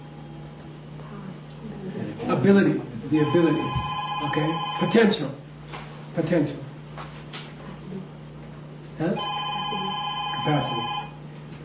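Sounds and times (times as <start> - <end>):
speech: 2.4 - 5.4, 6.2 - 6.6, 9.0 - 9.4, 10.4 - 10.9
telephone ringing with a steady electronic tone: 3.2 - 5.1, 9.2 - 11.2.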